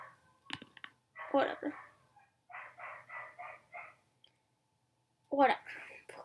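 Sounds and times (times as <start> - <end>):
female pet dog barking: 1.2 - 4.0
speech: 1.3 - 1.9, 5.3 - 6.2.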